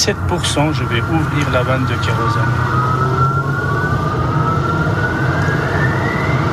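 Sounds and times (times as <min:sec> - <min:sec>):
speech: 0:00.0 - 0:03.2
aircraft jet engine spooling up at start: 0:00.1 - 0:06.5.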